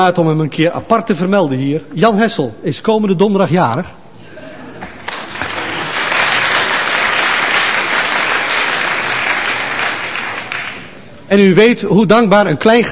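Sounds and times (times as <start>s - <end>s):
speech: 0.0s - 4.0s, 11.3s - 12.8s
large crowd applauding: 4.9s - 11.0s.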